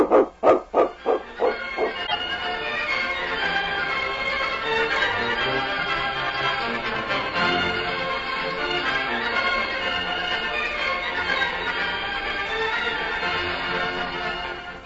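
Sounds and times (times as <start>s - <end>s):
dog barking: 0.0s - 2.2s
dense continuous noise: 0.0s - 14.8s.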